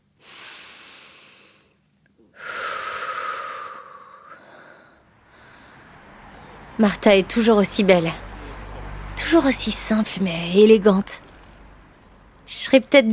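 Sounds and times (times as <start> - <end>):
person taking a deep breath outdoors: 0.2 - 6.7
speech: 6.8 - 8.2, 9.3 - 11.3, 12.5 - 13.1.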